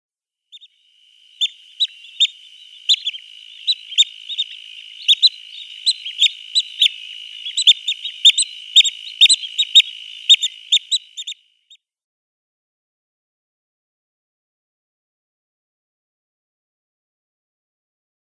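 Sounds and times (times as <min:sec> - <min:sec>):
juvenile Black-winged Stilt call: 0:00.5 - 0:11.4.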